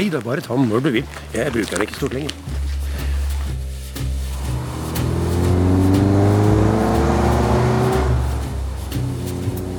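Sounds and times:
speech: 0.0s - 2.6s
car engine humming: 2.3s - 9.7s.

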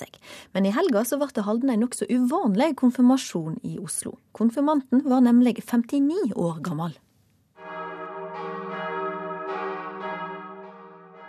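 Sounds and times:
speech: 0.5s - 7.1s
church bells ringing for a service: 7.6s - 11.2s.

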